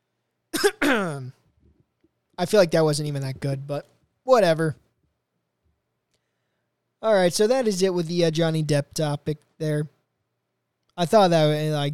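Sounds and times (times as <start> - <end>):
loud cough with a gravelly tail: 0.6 - 1.3
speech: 2.4 - 4.8, 7.0 - 10.0, 11.0 - 11.9.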